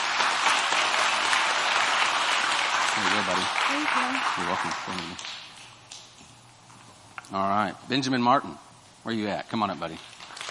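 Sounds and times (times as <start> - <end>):
audience applauding: 0.0 - 5.6, 10.0 - 10.5
speech: 3.0 - 5.4, 7.3 - 10.2.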